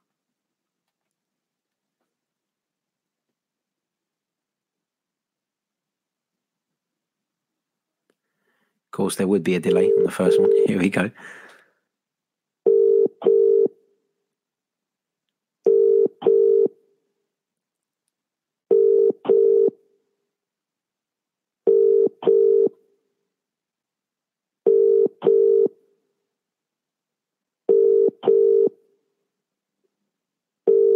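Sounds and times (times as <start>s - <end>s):
speech: 8.9s - 11.4s
telephone ringing tone on an outgoing call: 9.6s - 10.9s, 12.7s - 13.7s, 15.7s - 16.7s, 18.7s - 19.7s, 21.7s - 22.7s, 24.7s - 25.7s, 27.7s - 28.7s, 30.7s - 30.9s.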